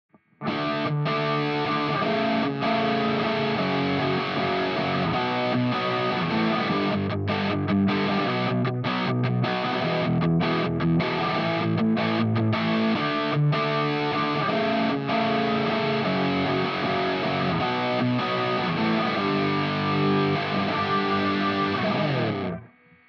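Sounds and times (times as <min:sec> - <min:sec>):
guitar: 0:00.1 - 0:23.0.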